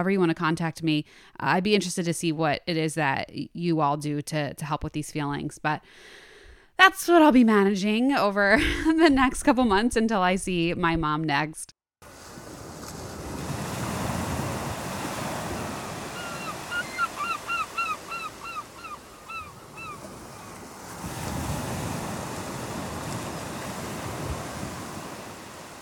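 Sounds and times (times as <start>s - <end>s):
speech: 0.0s - 11.8s
ocean waves breaking on a shore: 12.0s - 25.7s
short bright bird calls chirping: 16.0s - 20.1s.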